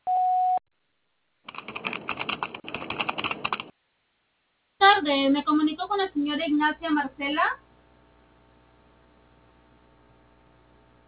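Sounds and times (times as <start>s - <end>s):
steady electronic voicemail beep: 0.0s - 0.6s
rapid scratchy clicking noise: 1.5s - 3.7s
speech: 5.0s - 7.6s.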